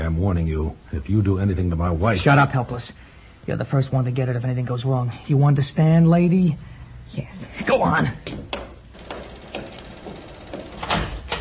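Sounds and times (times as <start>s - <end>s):
faint room hum: 0.0s - 11.3s
speech: 0.1s - 8.6s
firm knocking on a door: 8.2s - 11.3s.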